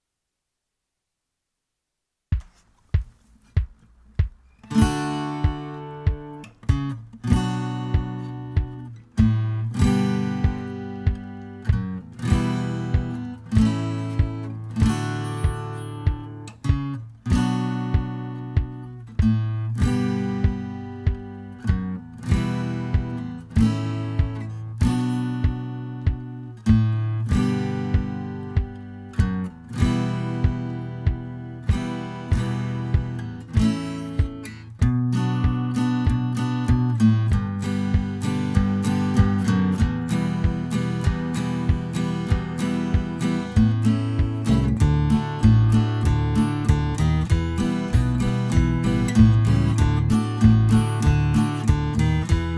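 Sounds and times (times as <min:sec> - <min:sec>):
banjo tune: 0:04.7 - 0:52.5.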